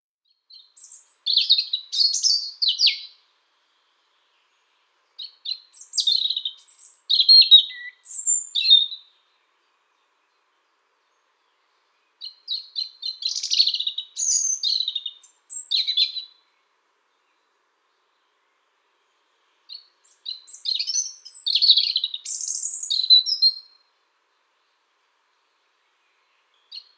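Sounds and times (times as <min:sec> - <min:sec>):
Erithacus rubecula calling: 0:00.5 - 0:03.2, 0:05.2 - 0:09.2, 0:12.2 - 0:16.4, 0:19.7 - 0:23.8.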